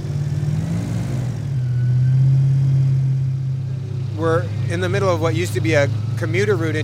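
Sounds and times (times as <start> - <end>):
airboat fan engine starting and revving in floodwaters: 0.0 - 6.8
speech: 4.2 - 6.8.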